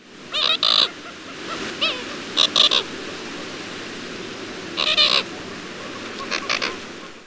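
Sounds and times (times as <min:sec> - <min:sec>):
Caribbean coot clucking and reedy squawking: 0:00.3 - 0:02.9, 0:04.8 - 0:07.2.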